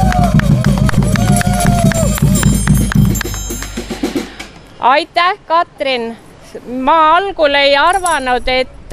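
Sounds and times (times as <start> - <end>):
crowd applauding: 0.0 - 4.2
speech: 4.8 - 8.9.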